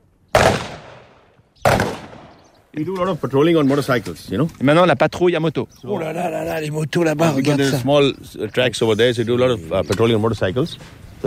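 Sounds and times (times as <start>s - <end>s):
gunshots from face-to-face firing at targets: 0.3s - 2.5s
speech: 2.8s - 11.2s.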